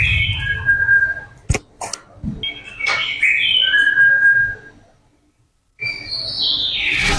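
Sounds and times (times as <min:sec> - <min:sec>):
birds singing in the morning in tropical North Queensland: 0:00.0 - 0:01.4, 0:02.4 - 0:04.8, 0:05.8 - 0:07.0.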